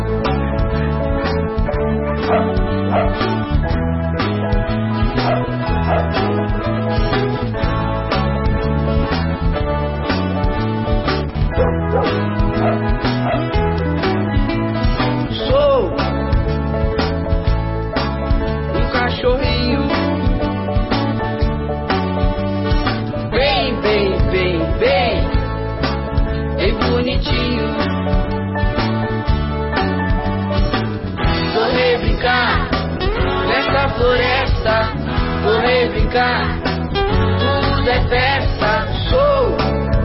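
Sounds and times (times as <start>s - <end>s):
dense steady musical backing: 0.0s - 40.0s
dogs barking and yipping: 2.2s - 3.4s, 5.1s - 6.3s, 11.5s - 13.6s.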